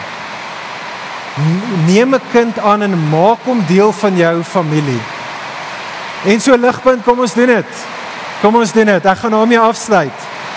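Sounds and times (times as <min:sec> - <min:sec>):
heavy rain falling: 0:00.0 - 0:06.6
speech: 0:01.4 - 0:05.1, 0:06.2 - 0:10.3.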